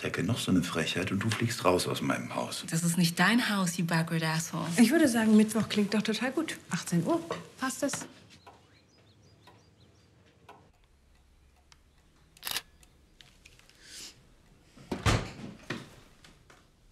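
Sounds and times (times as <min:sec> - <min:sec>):
speech: 0:00.0 - 0:08.2
camera shutter clicks from photos being taken: 0:12.4 - 0:12.7.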